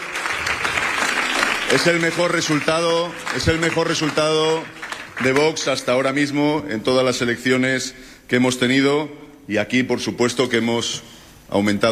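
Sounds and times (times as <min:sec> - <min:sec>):
crowd applauding at a party headquarters on a regional election night: 0:00.0 - 0:06.1
speech: 0:01.7 - 0:11.9.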